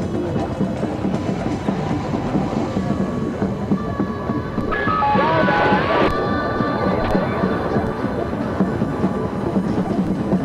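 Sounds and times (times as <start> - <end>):
festival crowd din: 0.0 - 10.4
sustained whistle-like tones: 4.6 - 7.3.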